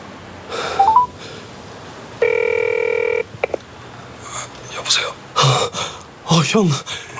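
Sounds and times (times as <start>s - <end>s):
telephone dialing beeps: 0.8s - 1.1s, 2.2s - 3.6s
speech: 6.5s - 7.0s.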